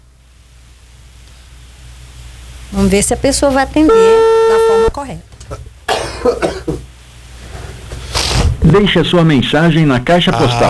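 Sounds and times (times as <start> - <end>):
speech: 2.7 - 5.7, 6.2 - 6.7, 8.7 - 10.6
call-progress tone beep on an outgoing telephone call: 3.9 - 4.9.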